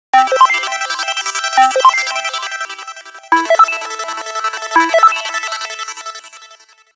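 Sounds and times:
alien ringtone from a mobile phone: 0.2 - 2.7, 3.3 - 5.8.

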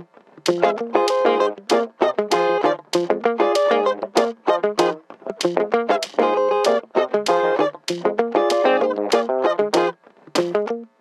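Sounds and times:
strummed ringtone on a Light Phone II: 0.5 - 10.6.

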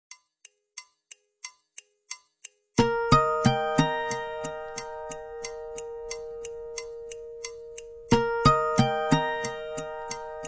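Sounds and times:
Nokia 6760 slide calendar alert: 2.8 - 10.4.

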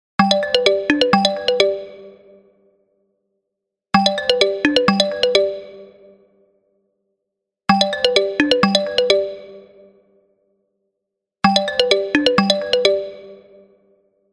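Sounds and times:
Alcatel OneTouch V985N phone ringtone: 0.2 - 2.1, 4.0 - 5.9, 7.7 - 9.6, 11.5 - 13.4.

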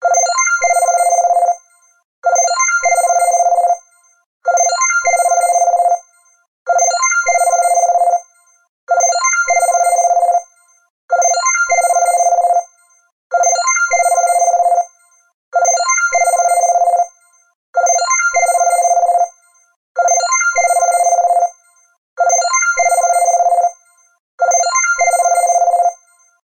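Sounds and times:
soft tone ringtone of an LG Optimus L5 E612 phone: 0.2 - 10.8, 11.8 - 26.4.

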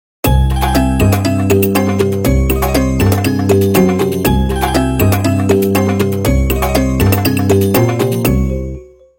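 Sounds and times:
belly dance ringtone melody on a mobile phone: 0.3 - 9.1.

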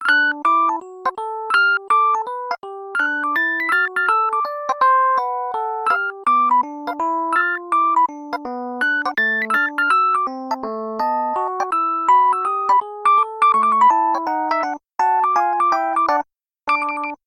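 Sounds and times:
jazzy mobile phone ringtone: 0.0 - 17.2.

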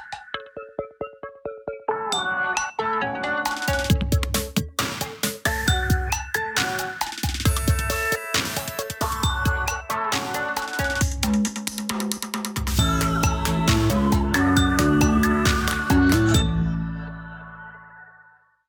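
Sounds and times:
LG Fortune M153 Cricket phone ringtone: 0.4 - 4.6, 5.5 - 11.3, 12.8 - 16.8.

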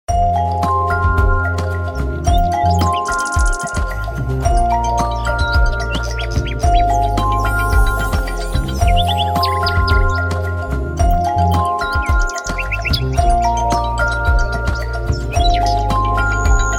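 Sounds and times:
funny birds ringtone on a Vodafone P600: 0.1 - 16.7.

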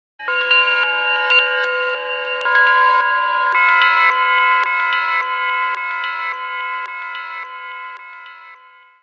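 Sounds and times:
alarm alert tones: 0.2 - 9.0.

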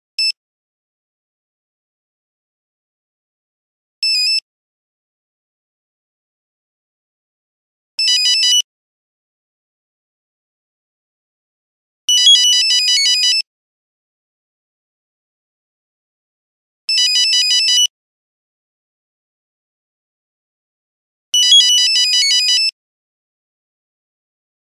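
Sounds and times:
Nokia phone buzzer: 8.0 - 8.6, 12.2 - 13.5, 16.9 - 17.9, 21.4 - 22.8.

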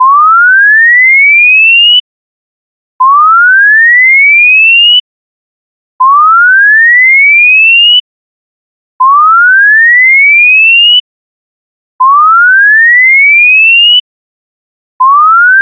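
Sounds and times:
siren alert tone at full scale from a smartphone: 0.0 - 2.0, 3.0 - 4.8, 6.0 - 8.0, 9.0 - 11.0, 12.0 - 14.0, 15.0 - 15.5.

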